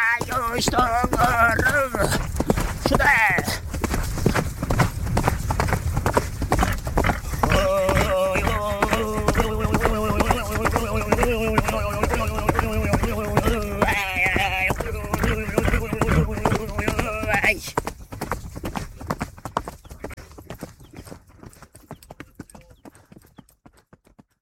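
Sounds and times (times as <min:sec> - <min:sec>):
galloping horse hoofbeats: 0:00.0 - 0:24.4
speech: 0:00.2 - 0:02.3, 0:02.9 - 0:03.6
Tuvan man's throaty droning singing with whistling overtones: 0:07.3 - 0:17.4.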